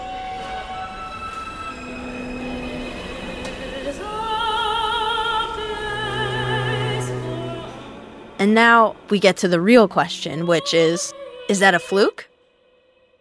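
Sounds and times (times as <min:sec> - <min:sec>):
moving subway cars rumbling: 0:00.0 - 0:10.8
subway train electric propulsion tones as transistors slow: 0:00.6 - 0:11.0
speech: 0:08.4 - 0:12.3.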